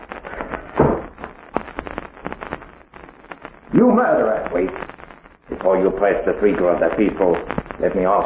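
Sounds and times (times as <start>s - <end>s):
door pushed shut with a solid thud: 0.8s - 1.0s
speech: 3.8s - 4.9s, 5.6s - 8.2s.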